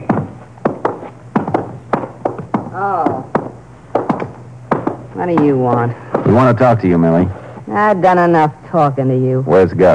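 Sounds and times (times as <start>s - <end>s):
knocking on a door: 0.0s - 6.7s
speech: 5.2s - 9.9s.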